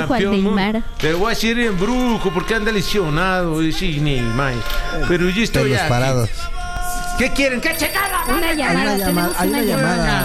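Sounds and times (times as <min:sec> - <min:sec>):
speech: 0:00.1 - 0:06.6, 0:07.2 - 0:10.2
telephone ringing with a musical ringtone with sung vocals: 0:07.7 - 0:10.2.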